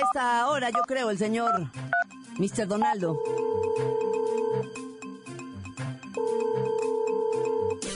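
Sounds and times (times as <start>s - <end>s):
speech: 0.1s - 4.0s
electronic telephone ringing tone on an outgoing call: 3.2s - 4.7s, 6.2s - 7.8s.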